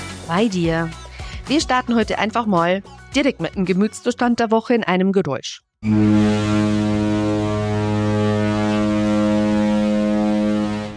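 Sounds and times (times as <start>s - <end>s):
speech: 0.3s - 6.5s
deep ship's horn blast: 5.8s - 10.9s.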